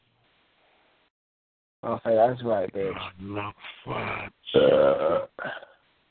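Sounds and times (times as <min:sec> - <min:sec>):
speech: 0:01.8 - 0:05.7
loud croaking burp: 0:02.8 - 0:05.8.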